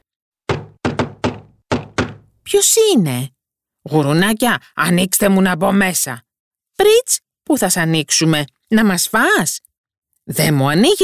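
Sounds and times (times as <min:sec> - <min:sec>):
knocking on a wooden door: 0:00.5 - 0:02.4
speech: 0:02.5 - 0:09.7, 0:10.3 - 0:11.0.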